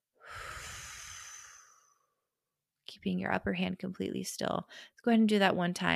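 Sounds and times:
slow breath exhaled through pursed lips: 0.2 - 2.2
speech: 3.0 - 5.9.

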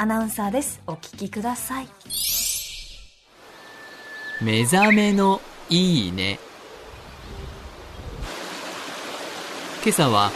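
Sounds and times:
speech: 0.0 - 2.4, 4.4 - 6.5, 9.8 - 10.3
flowing river water rushing: 3.3 - 6.9, 7.7 - 10.3.

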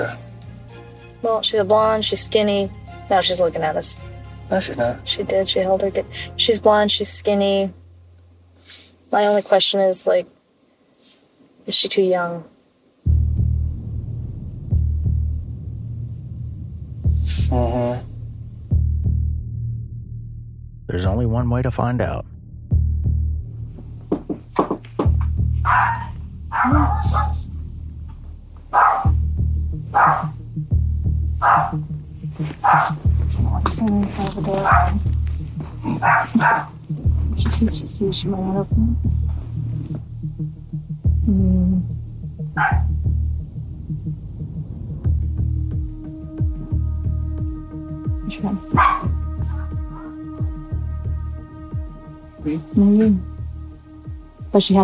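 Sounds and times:
low throbbing hum: 0.0 - 9.8, 12.8 - 54.8
speech: 1.2 - 7.8, 9.1 - 10.4, 11.7 - 12.5, 20.9 - 22.3, 26.6 - 27.4, 31.5 - 35.1, 35.8 - 39.1, 41.3 - 41.9, 42.6 - 42.9, 48.4 - 49.0, 52.4 - 53.3, 54.5 - 54.8
small Shih Tzu dog barking in sharp yaps: 25.6 - 27.4, 28.7 - 29.2, 30.0 - 30.4, 31.4 - 31.8, 32.6 - 33.0, 34.6 - 35.0, 35.9 - 36.8, 42.6 - 43.0, 48.7 - 50.2.

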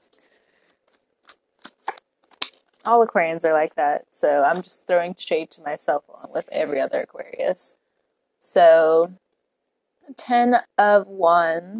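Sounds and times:
tarot deck being shuffled: 0.1 - 2.9
speech: 2.8 - 7.8, 8.4 - 9.2, 10.1 - 11.7.

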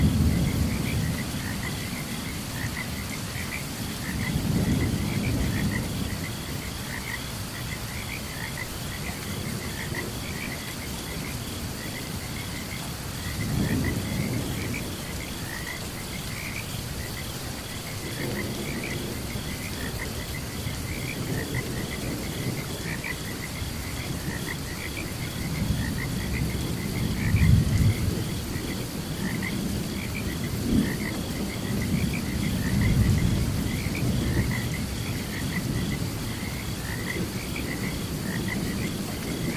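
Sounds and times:
thunder: 0.0 - 2.8, 3.9 - 7.2, 13.2 - 15.8, 18.0 - 39.5
constant rain: 0.0 - 39.5
frogs chirping during a thunderstorm: 0.0 - 39.5.

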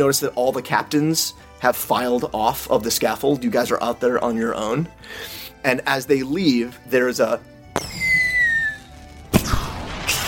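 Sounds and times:
speech: 0.0 - 7.5
firework whistling as it climbs: 7.8 - 10.2.

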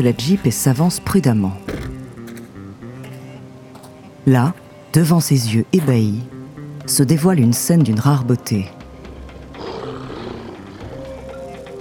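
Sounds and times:
speech: 0.0 - 2.0, 4.2 - 8.8
lion roaring: 9.6 - 11.2.

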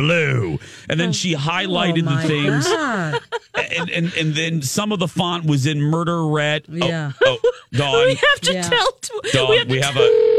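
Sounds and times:
speech: 0.0 - 10.3
laughter: 0.3 - 5.6, 6.8 - 10.2
electronic telephone ring tone of an incoming call: 9.4 - 10.3.

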